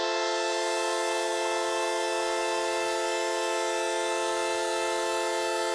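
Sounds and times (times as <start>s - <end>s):
tonal synth swell in F: 0.1s - 5.7s.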